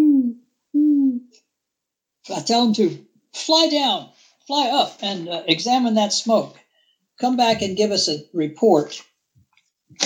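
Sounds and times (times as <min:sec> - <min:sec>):
hoot owl hooting: 0:00.0 - 0:01.3
speech: 0:02.3 - 0:06.6, 0:07.2 - 0:09.1.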